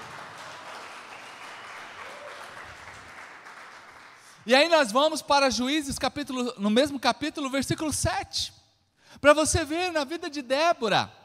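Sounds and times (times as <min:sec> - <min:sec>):
large audience applauding loudly: 0:00.0 - 0:04.4
speech: 0:04.5 - 0:08.6, 0:09.2 - 0:11.2.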